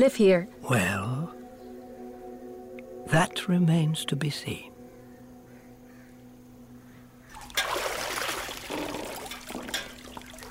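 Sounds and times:
speech: 0.0s - 1.2s, 3.1s - 4.7s
hot water pouring into a filling bath: 7.4s - 10.4s.

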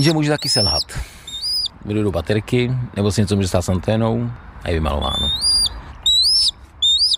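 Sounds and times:
speech: 0.0s - 1.1s, 1.8s - 5.5s
black kite calling: 0.0s - 1.8s, 5.0s - 7.1s.

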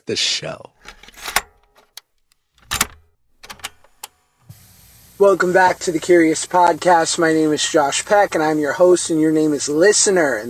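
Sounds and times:
speech: 0.0s - 1.0s, 5.2s - 10.4s
keys jangling inside a parked car: 2.6s - 4.1s
small clicks inside a parked car: 2.6s - 4.1s.

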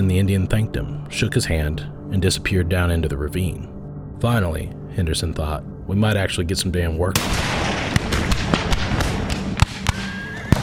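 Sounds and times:
speech: 0.0s - 7.8s
rumbling background: 0.0s - 10.6s
gunfire explosions from a ravine: 7.2s - 10.6s
thin whistling tone: 9.9s - 10.6s.

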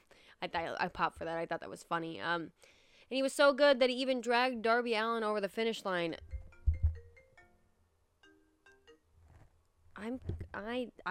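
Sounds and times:
speech: 0.4s - 6.4s, 10.0s - 11.0s
phone notification tone playing through a computer: 6.2s - 7.6s
low thump: 6.3s - 7.0s.

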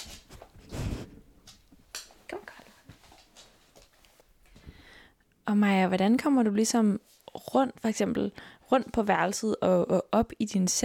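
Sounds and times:
dog sniffing against the microphone: 0.6s - 1.2s
speech: 5.5s - 10.8s.

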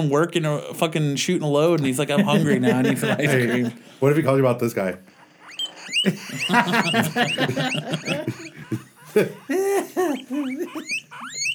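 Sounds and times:
speech: 0.0s - 5.2s, 6.0s - 11.4s
laughter: 1.8s - 11.5s
hungry guinea pig squeaking and wheeking: 5.1s - 8.8s, 10.1s - 11.5s.

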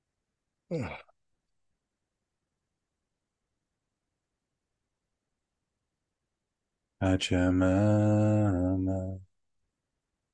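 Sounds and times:
person yawning: 0.7s - 1.0s
speech: 0.7s - 1.1s, 7.0s - 9.3s.

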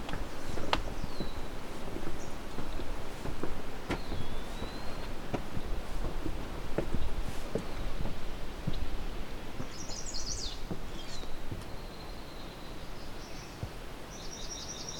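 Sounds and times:
rushing wind: 0.0s - 14.3s
swamp sparrow singing trills in a wetland thicket: 0.3s - 1.5s, 4.0s - 5.6s, 9.6s - 14.9s.

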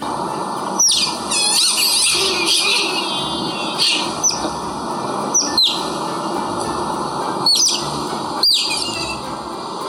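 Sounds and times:
steady hum: 0.0s - 9.8s
Asian small-clawed otters chirping: 0.8s - 4.5s, 5.3s - 6.0s, 7.4s - 9.2s.

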